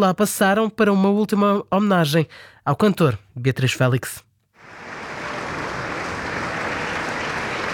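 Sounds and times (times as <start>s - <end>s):
speech: 0.0s - 4.3s
crowd applauding at a funeral wake: 4.6s - 7.7s.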